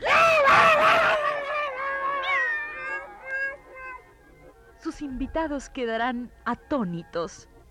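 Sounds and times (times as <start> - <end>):
cat yowling while fleeing: 0.0 - 4.5
speech: 5.0 - 7.5.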